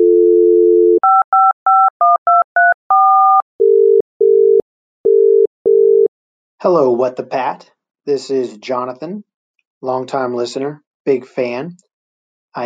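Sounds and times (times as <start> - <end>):
telephone dial tone: 0.0 - 6.1
speech: 6.6 - 11.9.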